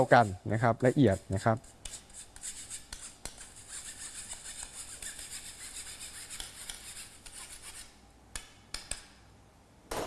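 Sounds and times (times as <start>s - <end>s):
speech: 0.0s - 2.0s
flour scraped against a bowl to smooth it: 0.0s - 7.9s.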